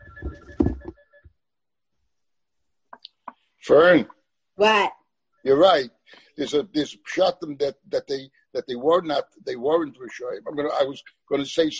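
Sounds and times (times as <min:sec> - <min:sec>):
electronic phone tone: 0:00.0 - 0:01.3
speech: 0:03.7 - 0:11.7.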